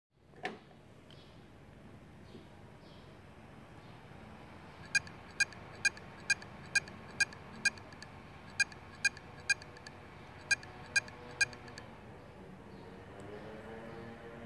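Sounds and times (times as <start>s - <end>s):
damaged WD 1TB hard drive heads: 2.6s - 12.2s.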